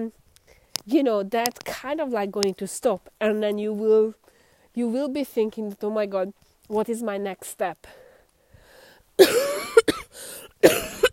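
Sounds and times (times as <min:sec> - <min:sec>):
speech: 0:00.0 - 0:00.2, 0:00.8 - 0:08.0, 0:09.2 - 0:09.8
harsh raspy cough with a wheezy catch: 0:09.2 - 0:11.1.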